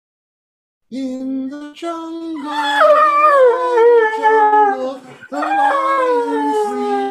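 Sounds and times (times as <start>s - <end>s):
speech: 0.9s - 2.9s
Catahoula leopard dog howling along to a song: 2.4s - 7.0s.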